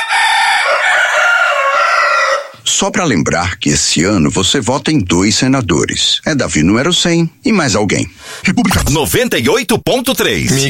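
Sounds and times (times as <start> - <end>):
two roosters crowing: 0.0 - 2.6
speech: 2.8 - 10.6.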